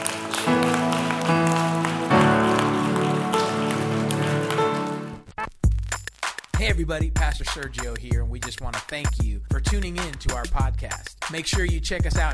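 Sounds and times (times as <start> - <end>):
sustained keyboard or organ chords: 0.0 - 5.2
crowd clapping in praise to God: 0.0 - 5.3
speech: 6.8 - 12.3.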